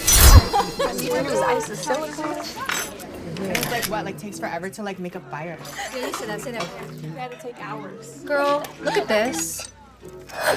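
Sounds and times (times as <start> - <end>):
laughter: 0.2 - 4.6, 5.6 - 6.9, 8.3 - 9.7
people chatting: 0.2 - 9.7
glasses clinking in a toast: 0.5 - 4.0, 8.9 - 9.8
speech: 1.0 - 10.5.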